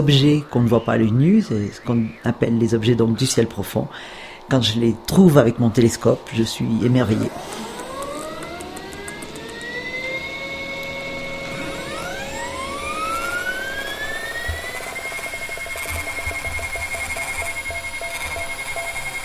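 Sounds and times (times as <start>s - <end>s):
speech: 0.0s - 7.7s
steady hum: 0.0s - 19.2s
electronic alarm clock ringing with shrill gliding tones: 7.7s - 19.2s.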